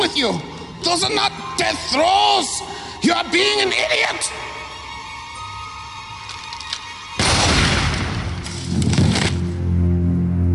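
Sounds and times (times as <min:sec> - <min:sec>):
speech: 0:00.2 - 0:04.6
crackling debris: 0:06.3 - 0:09.5
loud gunshot: 0:07.2 - 0:09.3.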